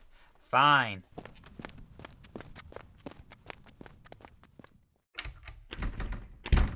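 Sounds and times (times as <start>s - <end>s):
speech: 0.5s - 1.3s
footsteps: 1.0s - 4.9s.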